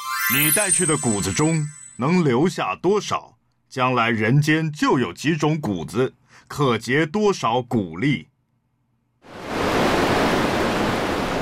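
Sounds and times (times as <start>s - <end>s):
speech: 0.3s - 8.3s
sea waves surging around a swimmer in the open sea: 9.3s - 11.4s.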